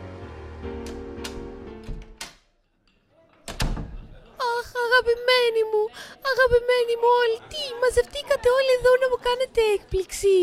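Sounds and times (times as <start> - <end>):
door of a family home opening with knocks and clunks: 0.8 - 2.4, 3.4 - 4.2
speech: 5.0 - 10.4.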